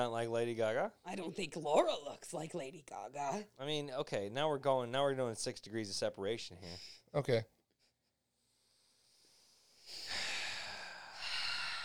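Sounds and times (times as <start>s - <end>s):
speech: 0.0s - 7.6s
heavy deliberate breathing with rushing hissy exhales: 8.4s - 11.8s.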